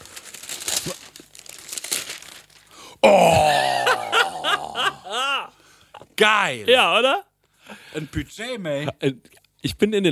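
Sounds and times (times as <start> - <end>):
wrapping paper crinkling as a shop-wrapped gift of pyjamas is unwrapped: 0.0 - 2.8
laughter: 3.3 - 5.5
speech: 6.2 - 7.3, 7.9 - 10.1.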